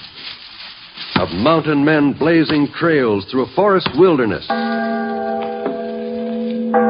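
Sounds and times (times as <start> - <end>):
speech: 1.2 - 5.1
large bell ringing: 4.5 - 6.8.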